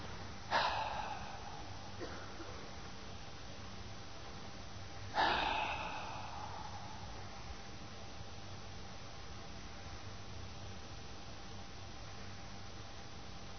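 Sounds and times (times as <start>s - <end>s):
quiet hum: 0.0s - 13.5s
person exhaling deeply during a guided relaxation exercise: 0.5s - 2.6s, 5.1s - 7.7s.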